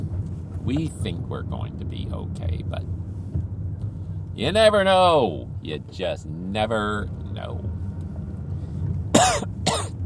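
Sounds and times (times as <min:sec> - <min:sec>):
speech: 0:00.7 - 0:03.5, 0:04.4 - 0:07.7
person coughing after inhaling saliva: 0:09.1 - 0:10.0.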